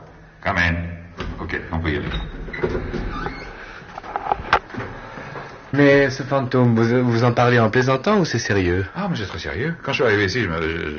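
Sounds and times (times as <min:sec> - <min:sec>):
quiet room hum: 0:00.0 - 0:10.9
soft door creak: 0:01.2 - 0:05.0
speech: 0:01.5 - 0:03.2, 0:05.7 - 0:10.9.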